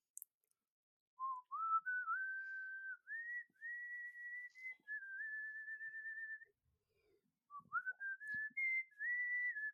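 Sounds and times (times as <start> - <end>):
person whistling a melodic tune: 1.2 - 6.6, 7.5 - 9.7.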